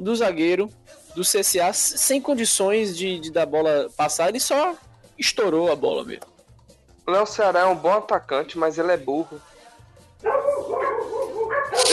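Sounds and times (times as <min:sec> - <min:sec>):
speech: 0:00.0 - 0:06.3, 0:07.1 - 0:09.5
dogs barking with yapping barks: 0:10.2 - 0:11.9.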